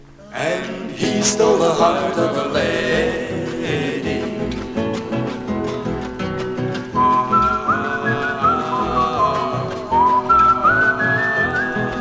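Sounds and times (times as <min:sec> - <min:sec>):
speech: 0:01.2 - 0:03.1
steady instrumental accompaniment: 0:03.4 - 0:12.0
person whistling a clear bright melody: 0:06.9 - 0:12.0.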